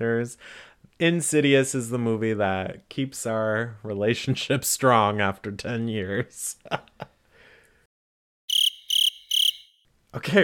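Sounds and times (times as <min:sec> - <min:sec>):
speech: 0:00.0 - 0:07.0, 0:10.2 - 0:10.4
cricket chirping: 0:08.5 - 0:09.8.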